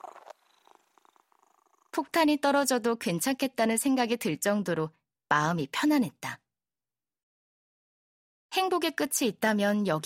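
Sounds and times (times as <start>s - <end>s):
cat purring while dozing: 0.0s - 2.4s
speech: 2.0s - 6.4s, 8.6s - 10.0s.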